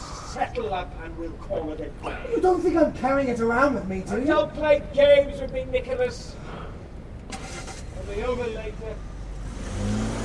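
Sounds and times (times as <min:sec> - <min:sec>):
speech: 0:00.4 - 0:06.6, 0:08.1 - 0:09.1
car engine revving, tearing away out of a car park: 0:07.3 - 0:10.2.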